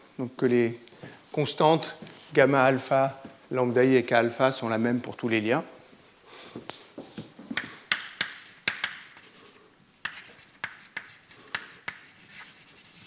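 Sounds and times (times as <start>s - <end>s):
speech: 0.2s - 5.8s
scratchy writing strokes and taps writing out an equation: 7.6s - 13.0s.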